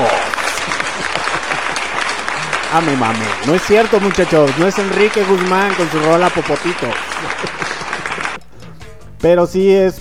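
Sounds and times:
dense loud applause from a crowd: 0:00.0 - 0:08.4
laughter: 0:00.0 - 0:08.4
speech: 0:02.7 - 0:07.8, 0:09.2 - 0:09.9.

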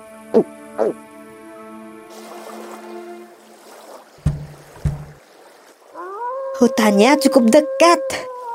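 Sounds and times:
speech: 0:00.3 - 0:01.0, 0:06.6 - 0:08.3
water sloshing and swirling: 0:02.1 - 0:07.6
oars knocking against a small boat: 0:03.7 - 0:05.9
brief creak: 0:04.2 - 0:05.2
hollow wooden thumps: 0:04.2 - 0:05.2.

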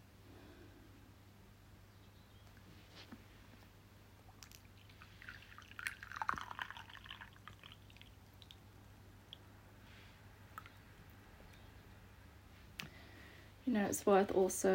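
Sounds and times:
low steady hum: 0:00.0 - 0:14.7
tea pouring into a bowl: 0:04.4 - 0:08.6
speech: 0:13.7 - 0:14.7.

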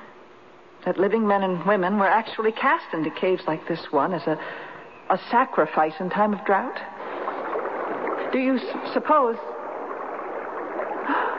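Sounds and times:
speech: 0:00.8 - 0:07.0, 0:08.3 - 0:09.5
water rushing in, filling a crater: 0:06.4 - 0:11.3.

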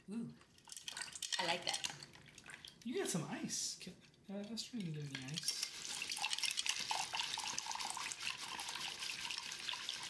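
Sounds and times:
speech: 0:00.1 - 0:00.5, 0:01.4 - 0:02.0, 0:02.8 - 0:05.6
cold coffee pouring into a glass on sweetened condensed milk: 0:00.6 - 0:02.9, 0:05.0 - 0:10.0.

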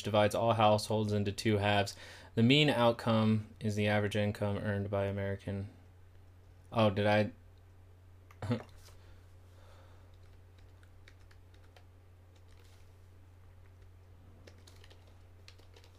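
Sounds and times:
speech: 0:00.0 - 0:05.8, 0:06.7 - 0:07.4, 0:08.4 - 0:08.7
computer keyboard typing: 0:10.1 - 0:12.8, 0:13.6 - 0:15.9.

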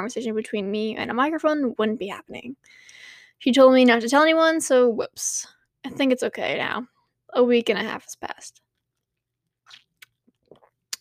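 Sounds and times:
speech: 0:00.0 - 0:08.6
wet throat noises with a sharp click: 0:09.7 - 0:11.0.

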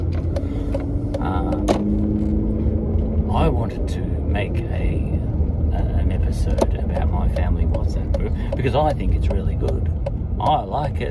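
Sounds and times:
low engine rumble from inside a car pulling out into traffic: 0:00.0 - 0:11.0
regular clicking ticks: 0:06.5 - 0:10.6
speech: 0:08.6 - 0:11.0.

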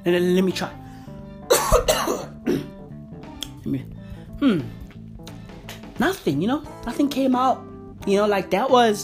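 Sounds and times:
speech: 0:00.0 - 0:00.8, 0:03.6 - 0:04.8, 0:06.0 - 0:09.0
weak cough: 0:01.5 - 0:02.8.

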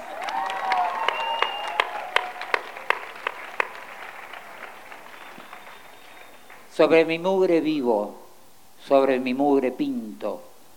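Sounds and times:
audience whistles: 0:00.0 - 0:02.9, 0:03.7 - 0:06.7
audience cheers: 0:00.0 - 0:06.7
audience clapping: 0:00.0 - 0:07.0
speech: 0:06.8 - 0:08.2, 0:08.8 - 0:10.5.

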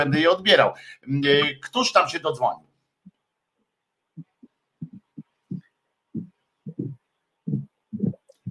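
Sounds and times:
speech: 0:00.0 - 0:02.7
caller's heartbeat over a phone line: 0:04.2 - 0:08.4.

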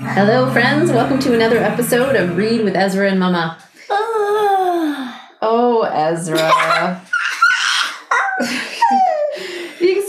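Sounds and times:
speech: 0:00.1 - 0:07.0
child yawning: 0:03.9 - 0:05.2
laughter: 0:06.3 - 0:10.0.

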